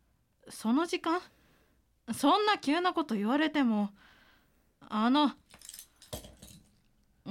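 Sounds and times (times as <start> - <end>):
speech: 0.5 - 1.4, 2.1 - 4.1, 4.8 - 5.6
small metal spare house key jingling as handled: 5.4 - 6.9.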